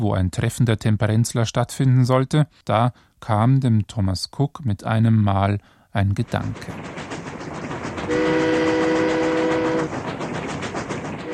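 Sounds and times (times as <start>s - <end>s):
speech: 0.0s - 7.1s
steam train rumbling past: 6.0s - 11.3s
steam train horn blast: 8.1s - 10.0s, 11.2s - 11.3s.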